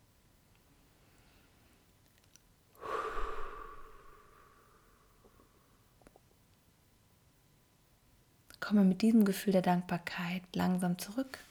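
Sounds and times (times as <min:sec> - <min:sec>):
deep breath during guided relaxation exercise: 0:02.8 - 0:05.6
speech: 0:08.7 - 0:11.4.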